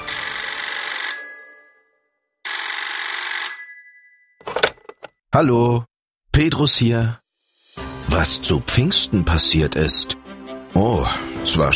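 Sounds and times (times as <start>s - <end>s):
telephone ringing with bright buzzing rings: 0.0s - 4.8s
speech: 5.4s - 7.2s, 8.1s - 10.2s, 10.8s - 11.7s.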